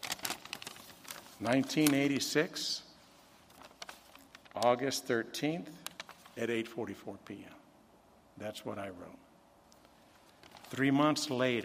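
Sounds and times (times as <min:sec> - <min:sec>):
sheet of paper crinkling as it is handled: 0:00.0 - 0:02.2, 0:03.0 - 0:04.9, 0:05.8 - 0:06.4, 0:09.7 - 0:11.6
speech: 0:01.4 - 0:02.8, 0:04.6 - 0:07.6, 0:08.4 - 0:09.2, 0:10.7 - 0:11.6.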